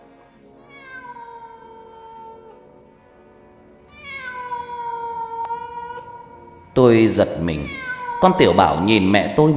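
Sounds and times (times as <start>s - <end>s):
cat with bristling fur yowling pitifully: 0.6s - 2.7s, 3.9s - 6.8s, 7.4s - 8.8s
speech: 6.8s - 9.5s.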